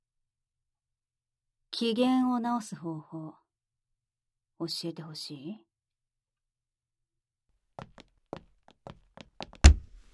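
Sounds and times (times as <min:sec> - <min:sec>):
speech: 0:01.8 - 0:03.4, 0:04.6 - 0:05.7
soft taps and knocks: 0:08.9 - 0:10.0
hand slamming hard against a wall: 0:09.6 - 0:10.0.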